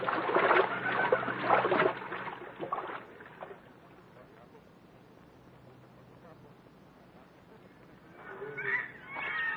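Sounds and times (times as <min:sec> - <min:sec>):
water splashing and sloshing as people wade across a river: 0:00.0 - 0:04.1.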